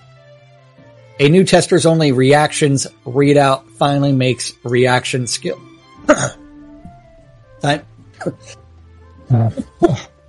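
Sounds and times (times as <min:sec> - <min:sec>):
speech: 0:01.2 - 0:06.4, 0:07.6 - 0:08.6, 0:09.3 - 0:10.2
person clearing throat: 0:06.1 - 0:06.4, 0:09.3 - 0:10.2.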